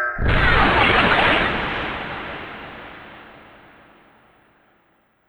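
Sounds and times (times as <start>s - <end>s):
bomb drop exploding: 0.2s - 4.8s.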